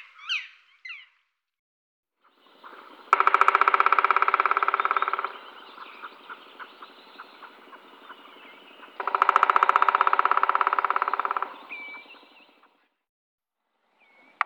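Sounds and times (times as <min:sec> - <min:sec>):
black woodpecker drumming: 0:02.4 - 0:12.7
steady background hum: 0:02.4 - 0:12.7.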